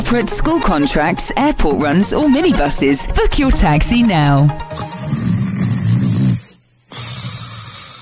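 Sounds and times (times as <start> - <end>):
speech: 0.1 - 5.2
person snoring heavily while sleeping: 4.7 - 8.0.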